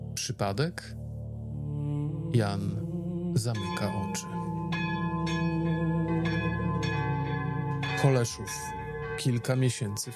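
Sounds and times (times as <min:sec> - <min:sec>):
speech: 0:00.2 - 0:01.0, 0:02.3 - 0:04.5, 0:08.0 - 0:10.1
church bells ringing the alarm: 0:03.6 - 0:10.1.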